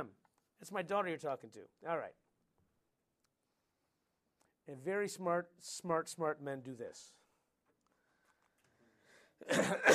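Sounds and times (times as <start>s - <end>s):
speech: 0.0s - 2.2s, 4.7s - 7.2s, 9.4s - 9.9s
person coughing: 9.4s - 9.9s.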